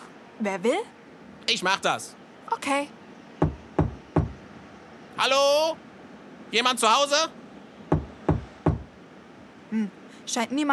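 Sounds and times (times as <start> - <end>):
speech: 0.4 - 3.0, 5.2 - 5.8, 6.5 - 7.4, 9.7 - 10.7
knocking on a door: 3.4 - 4.4, 7.9 - 8.9.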